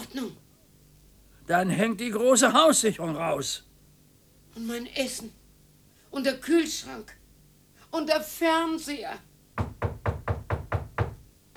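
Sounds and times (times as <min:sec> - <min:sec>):
speech: 0:01.5 - 0:03.7, 0:04.6 - 0:05.4, 0:06.1 - 0:07.2, 0:07.9 - 0:09.8
knocking on a door: 0:09.6 - 0:11.5.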